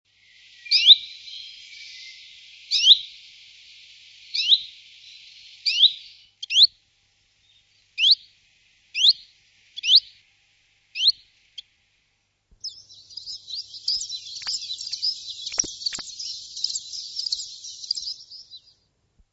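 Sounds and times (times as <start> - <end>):
Common chiffchaff song with sharp high notes and hissing twittering: 0.2 - 6.8, 7.4 - 8.3, 9.0 - 10.2, 11.0 - 11.3, 12.6 - 18.8
soft clicks: 13.9 - 18.0.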